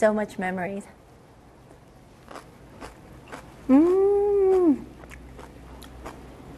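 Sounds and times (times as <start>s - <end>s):
crunchy chewing of fresh blanched kimchi: 2.2s - 6.5s
person humming mmm: 3.6s - 5.0s.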